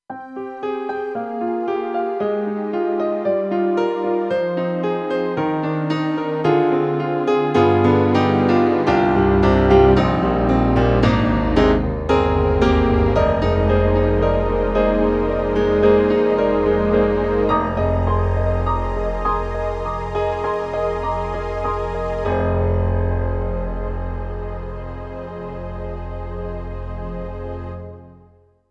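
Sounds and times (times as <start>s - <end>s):
synthesizer piano: 0.0s - 28.6s
synthesizer strings: 0.5s - 28.2s.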